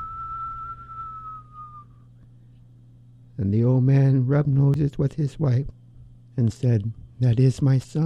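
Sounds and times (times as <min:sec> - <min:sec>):
person whistling a long note imitating the north wind: 0:00.0 - 0:02.1
low hum: 0:00.0 - 0:08.0
speech: 0:03.4 - 0:05.8, 0:06.4 - 0:08.0.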